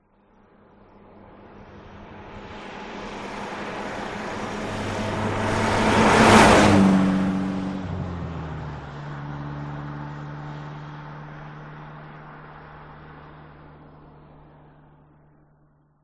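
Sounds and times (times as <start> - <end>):
Aston Martin car driving by fast: 1.6 - 14.9.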